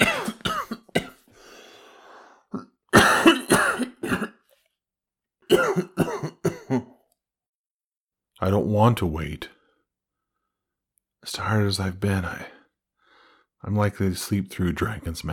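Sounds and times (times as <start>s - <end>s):
harsh fit of coughing: 0.0s - 1.3s, 2.5s - 4.4s, 5.5s - 7.0s
raspy wheezing breath: 1.3s - 2.5s
speech: 8.5s - 9.6s, 11.2s - 12.6s, 13.6s - 15.3s.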